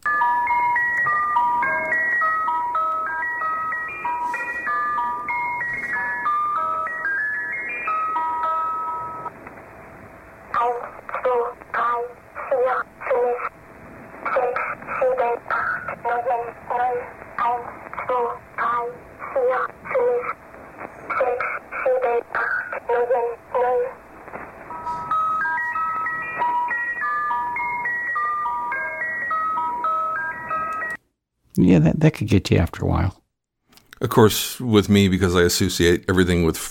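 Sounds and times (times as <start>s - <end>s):
tinkly music-box melody on a shortwave numbers station: 0.0s - 9.3s, 24.7s - 31.0s
hissy shortwave static: 0.9s - 31.0s
speech: 31.7s - 33.2s, 34.0s - 36.7s.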